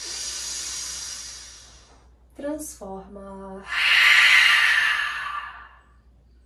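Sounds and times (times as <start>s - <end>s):
long breath during a therapeutic Lu Jong yoga session for the spine: 0.0s - 2.0s, 3.6s - 6.1s
speech: 2.4s - 3.9s.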